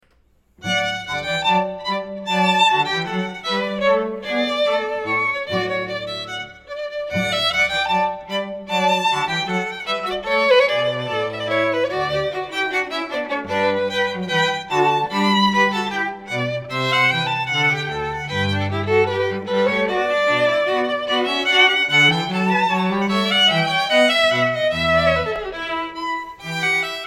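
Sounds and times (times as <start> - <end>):
string quartet playing a balletto: 0.6 - 27.0.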